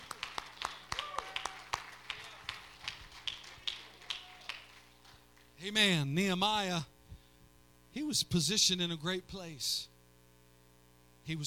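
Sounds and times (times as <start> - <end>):
audience clapping during a sermon: 0.0 - 5.6
speech: 5.6 - 6.9, 8.0 - 9.9, 11.2 - 11.4.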